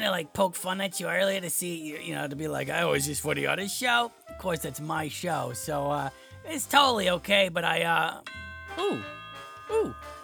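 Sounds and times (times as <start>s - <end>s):
speech: 0.0s - 10.2s
doorbell chiming: 8.3s - 10.2s.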